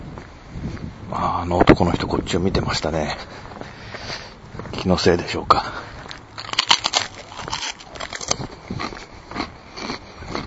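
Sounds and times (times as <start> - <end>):
speech: 1.1 - 3.5, 4.8 - 5.8
crunching on a plain rice cracker: 6.1 - 10.4.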